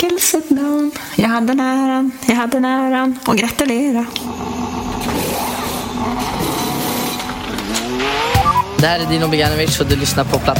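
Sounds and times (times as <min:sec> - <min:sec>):
speech: 0:00.2 - 0:04.6, 0:08.8 - 0:10.5
Formula 1 car engine roaring while accelerating and shifting gears: 0:04.2 - 0:10.5.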